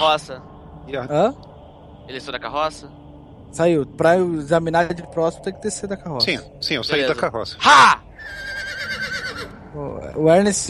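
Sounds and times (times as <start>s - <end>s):
speech: 0.0s - 1.5s, 2.1s - 8.5s, 9.8s - 10.6s
horse neighing: 8.2s - 9.6s.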